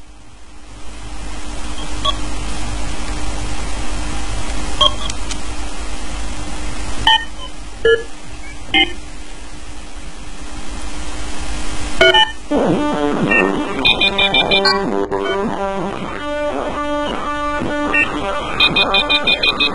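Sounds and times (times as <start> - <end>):
low hum: 0.0 - 19.7
steady hiss: 0.0 - 19.7
short electronic beeps and blips: 4.8 - 5.1, 7.1 - 9.0, 12.0 - 12.4, 13.2 - 15.5, 17.9 - 19.7.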